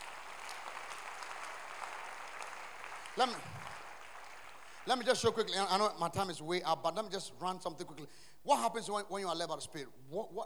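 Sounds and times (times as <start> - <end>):
crowd clapping in a large room: 0.0 - 6.0
speech: 3.2 - 3.7, 4.8 - 10.4.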